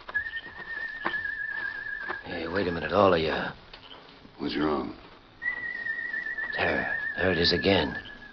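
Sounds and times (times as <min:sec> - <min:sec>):
escaped prisoner whistling an imitation croaking bird call: 0:00.1 - 0:02.2, 0:05.4 - 0:08.3
speech: 0:02.6 - 0:03.6, 0:04.4 - 0:05.0, 0:06.6 - 0:08.1.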